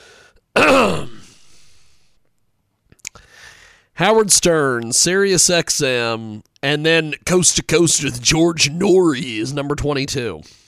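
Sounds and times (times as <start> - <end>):
loud throat-clearing cough: 0.6 - 1.3
speech: 4.0 - 10.6.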